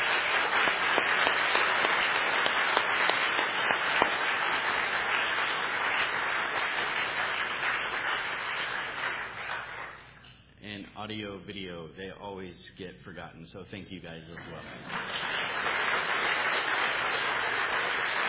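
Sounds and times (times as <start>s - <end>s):
audience applause: 0.0s - 10.1s, 14.4s - 18.2s
speech: 11.5s - 16.4s.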